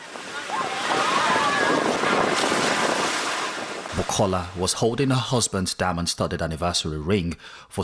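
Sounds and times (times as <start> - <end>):
ocean surf rolling onto the beach at Virginia Beach oceanfront: 0.0 - 4.8
speech: 4.0 - 7.8.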